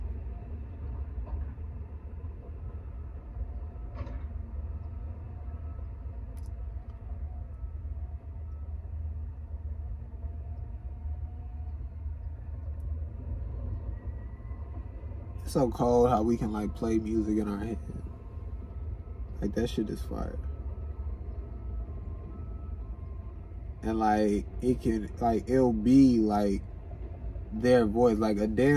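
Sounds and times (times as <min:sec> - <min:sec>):
heavy truck engine rumbling: 0:00.0 - 0:28.7
clank: 0:03.9 - 0:04.4
speech: 0:15.5 - 0:18.0, 0:19.4 - 0:20.5, 0:23.8 - 0:26.7, 0:27.5 - 0:28.7.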